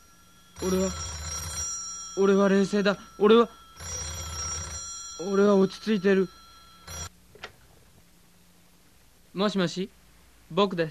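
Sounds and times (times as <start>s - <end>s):
telephone ringing: 0.0s - 7.1s
speech: 0.6s - 1.1s, 2.2s - 3.9s, 5.2s - 6.4s, 9.4s - 10.9s.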